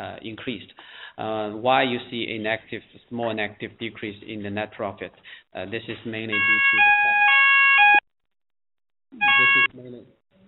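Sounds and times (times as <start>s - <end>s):
speech: 0.0s - 7.3s, 9.1s - 10.2s
ambulance siren with harsh two-tone wail: 6.4s - 8.0s, 9.2s - 9.7s.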